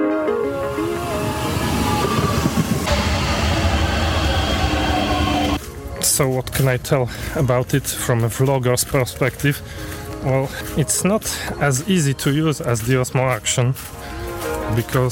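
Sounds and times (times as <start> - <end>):
steady tones: 0.1 - 5.7
train passing: 0.2 - 5.7
speech: 6.2 - 14.1, 14.7 - 15.0.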